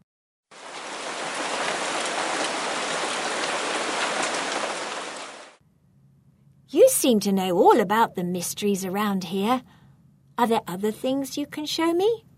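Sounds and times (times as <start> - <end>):
heavy rain pouring in a squall: 0.5 - 5.6
speech: 7.0 - 9.8, 10.4 - 12.3.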